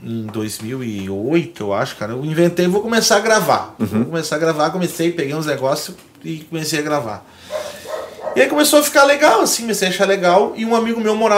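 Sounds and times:
faint room noise: 0:00.0 - 0:11.3
speech: 0:00.1 - 0:07.6, 0:08.4 - 0:11.3
dog barking: 0:07.5 - 0:08.5.

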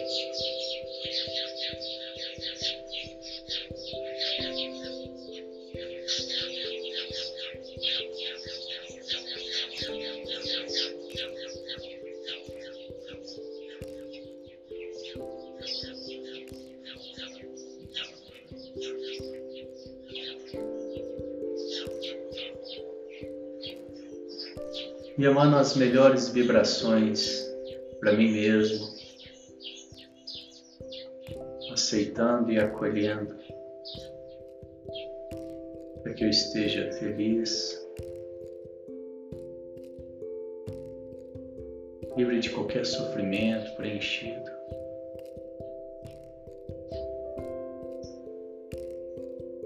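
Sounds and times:
soft tonal music bed of sustained low notes: 0:00.0 - 0:49.6
songbirds chirping and trilling in a chorus: 0:00.0 - 0:49.6
speech: 0:25.2 - 0:27.4, 0:28.0 - 0:29.0, 0:31.9 - 0:33.4, 0:36.2 - 0:37.8, 0:42.2 - 0:44.6.

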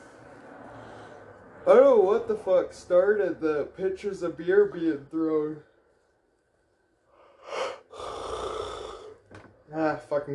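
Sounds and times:
speech: 0:01.6 - 0:05.7, 0:09.7 - 0:10.3
person yawning: 0:07.4 - 0:09.2.

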